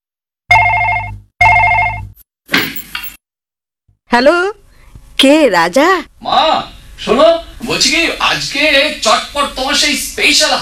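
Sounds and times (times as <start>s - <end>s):
telephone ringing in a home: 0.5s - 2.2s
speech: 4.1s - 4.6s, 5.2s - 10.6s.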